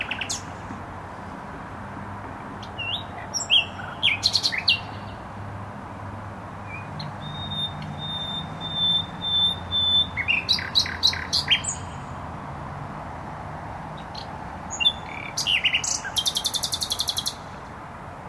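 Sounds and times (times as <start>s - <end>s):
constant low traffic roar from a noisy motorway: 0.0s - 18.2s
nightingale singing in bushes in Warsaw Poland: 2.6s - 5.2s, 6.7s - 12.2s, 14.0s - 17.5s.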